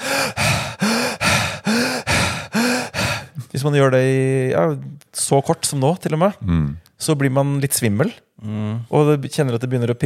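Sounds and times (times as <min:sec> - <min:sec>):
person hyperventilating with rapid heavy breaths: 0:00.0 - 0:03.4
speech: 0:03.6 - 0:10.0.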